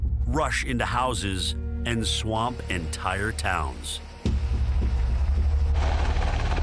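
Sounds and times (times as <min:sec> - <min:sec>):
speech: 0:00.3 - 0:04.0
helicopter rotors thumping: 0:04.3 - 0:06.6.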